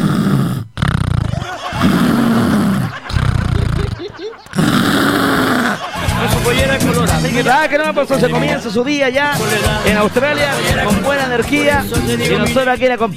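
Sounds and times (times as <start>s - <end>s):
person imitating snoring with their voice: 0.0s - 5.8s
laughter: 1.3s - 8.6s, 9.4s - 12.4s
speech: 7.6s - 13.1s.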